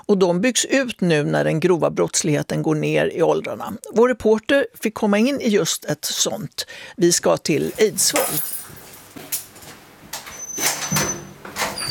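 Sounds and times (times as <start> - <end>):
speech: 0.1 - 9.3
cell door faint squeal: 10.2 - 11.8.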